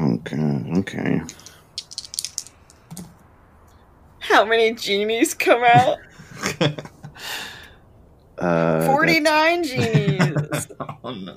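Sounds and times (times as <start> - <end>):
speech: 0.2 - 1.5, 4.4 - 6.9, 8.4 - 11.3
percentile dice tumbling across a table: 1.3 - 3.1
laughter: 5.8 - 7.2, 9.7 - 11.3.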